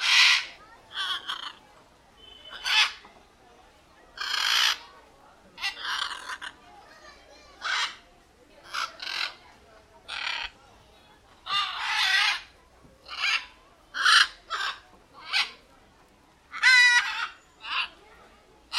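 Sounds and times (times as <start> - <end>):
macaws giving short rasping screeches: 0.0 - 1.6, 2.5 - 3.0, 4.2 - 4.8, 5.6 - 6.6, 7.6 - 8.0, 8.6 - 9.4, 10.1 - 10.6, 11.4 - 15.6, 16.5 - 18.0.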